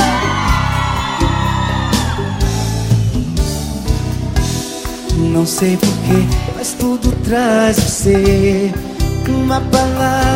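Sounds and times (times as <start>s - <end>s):
excited people shouting and whooping: 0.0s - 3.4s
loud driving music with a heavy thumping beat: 0.0s - 10.3s
speech: 5.4s - 10.3s.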